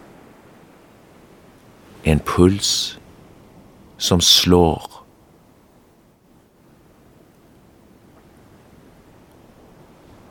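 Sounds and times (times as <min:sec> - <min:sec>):
ocean waves rolling softly onto a beach: 0:00.0 - 0:10.3
speech: 0:02.0 - 0:03.0, 0:04.0 - 0:05.0.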